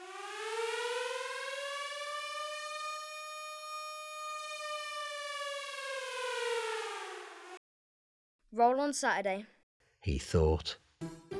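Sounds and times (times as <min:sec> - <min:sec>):
curfew siren wailing: 0:00.0 - 0:07.6
speech: 0:08.5 - 0:11.2.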